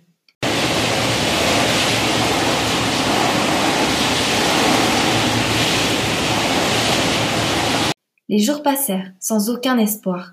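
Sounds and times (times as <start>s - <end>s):
storm winds roaring: 0.4s - 8.0s
speech: 8.3s - 10.3s.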